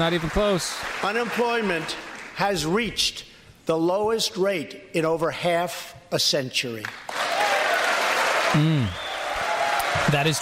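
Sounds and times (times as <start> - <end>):
large audience applauding a speech: 0.0 - 2.4, 7.1 - 10.4
speech: 0.0 - 7.2, 8.5 - 9.0, 10.0 - 10.4.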